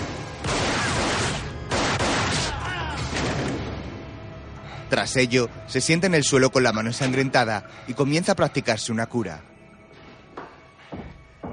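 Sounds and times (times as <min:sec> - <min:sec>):
pistol gunshots in an action-thriller film scene: 0:00.0 - 0:03.7
speech: 0:04.9 - 0:09.5.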